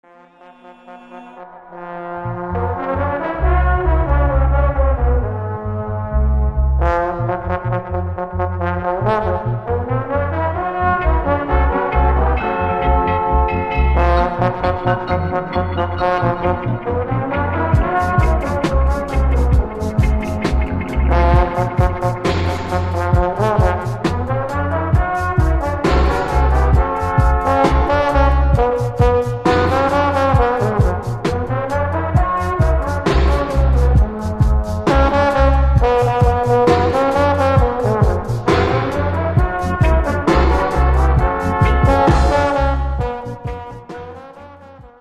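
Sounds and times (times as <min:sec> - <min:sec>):
African horns: 0:00.0 - 0:44.9.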